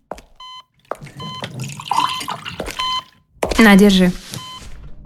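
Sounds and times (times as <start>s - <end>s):
drinking water poured into a glass: 1.4s - 2.8s
speech: 3.6s - 4.2s.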